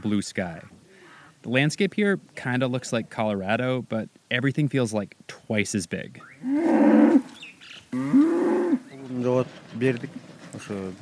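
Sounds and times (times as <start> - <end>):
speech: 0.0 - 0.8, 1.4 - 7.3, 7.9 - 8.2, 9.2 - 11.0
herd of cattle mooing in a barnyard: 6.4 - 8.9.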